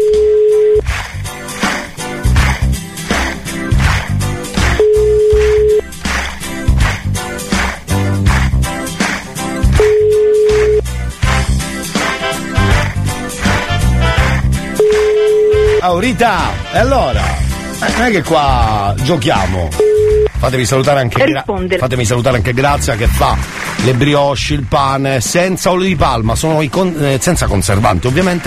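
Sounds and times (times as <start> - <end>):
telephone ringback tone while calling someone: 0.0 - 0.8, 4.8 - 5.9, 9.8 - 10.9, 14.8 - 15.8, 19.8 - 20.3
loud rhythmic music: 0.0 - 28.4
speech: 16.1 - 19.8, 20.4 - 28.4.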